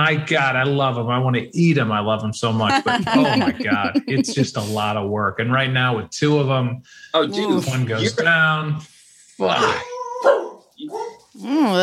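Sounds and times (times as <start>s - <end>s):
speech: 0.0s - 11.8s
laughter: 2.4s - 5.3s, 7.1s - 8.4s
dogs barking excitedly: 10.1s - 11.3s.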